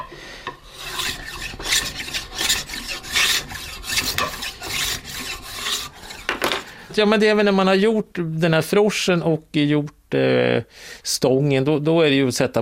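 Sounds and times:
finely sharpened bow maker's plane shaving wood: 0:00.6 - 0:07.0
speech: 0:07.0 - 0:12.6.

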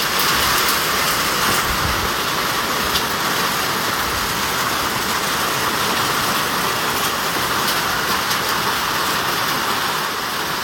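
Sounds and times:
heavy rain drumming on a tin roof: 0:00.0 - 0:10.6.

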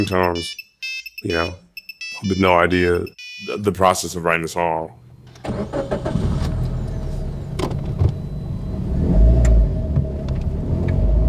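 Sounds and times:
speech: 0:00.0 - 0:01.6, 0:02.2 - 0:06.1
car engine rumble and road drone in the back seat: 0:04.9 - 0:11.2.

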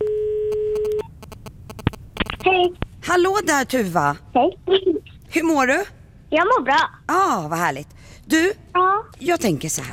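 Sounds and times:
telephone line tone as a call is placed: 0:00.0 - 0:01.0
speech: 0:02.4 - 0:09.9.

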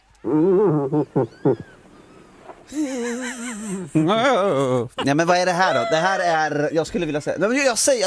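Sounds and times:
speech: 0:00.2 - 0:01.8, 0:03.8 - 0:08.0
irritated female moose moaning, grunting and bellowing: 0:00.3 - 0:03.8, 0:05.0 - 0:06.5
laughter: 0:02.7 - 0:06.7.

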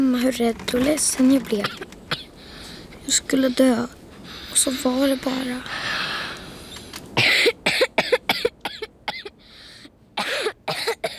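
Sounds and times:
speech: 0:00.0 - 0:01.9, 0:03.1 - 0:05.9
harsh heavy coughing: 0:01.6 - 0:02.3, 0:07.2 - 0:09.4, 0:10.2 - 0:11.1.

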